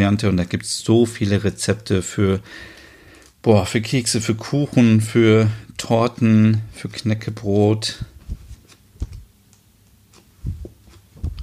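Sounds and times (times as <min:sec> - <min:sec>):
speech: 0:00.0 - 0:02.8, 0:03.4 - 0:08.1
pages of a book being turned: 0:08.2 - 0:09.3, 0:10.1 - 0:11.4.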